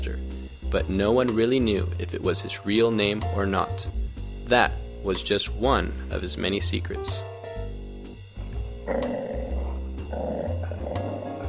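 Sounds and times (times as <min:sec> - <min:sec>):
speech: 0:00.1 - 0:07.3, 0:08.9 - 0:09.2
dog growling with a deep rumbling snarl: 0:08.8 - 0:11.4.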